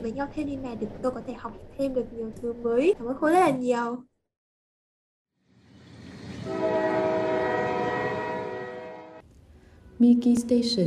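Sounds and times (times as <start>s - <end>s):
speech: 0.0s - 4.1s, 10.0s - 10.8s
train horn as a train arrives at its final station: 6.4s - 9.2s.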